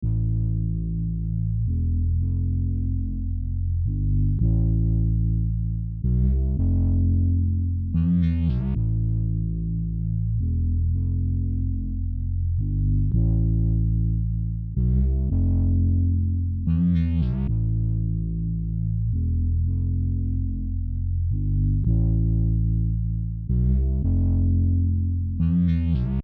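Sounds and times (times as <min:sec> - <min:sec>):
bass: 0:00.0 - 0:26.2.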